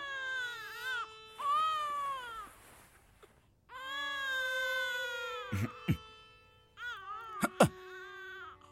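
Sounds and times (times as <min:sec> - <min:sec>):
newborn baby crying in wavering wails: 0:00.0 - 0:02.5, 0:03.7 - 0:06.1, 0:06.8 - 0:08.7
rustling: 0:02.3 - 0:03.6.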